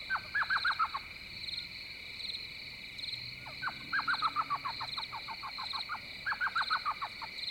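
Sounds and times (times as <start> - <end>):
steady drone of insects: 0.0 - 7.4
elf owl yelping from mesquite trees along a river: 0.1 - 1.1, 3.4 - 7.2.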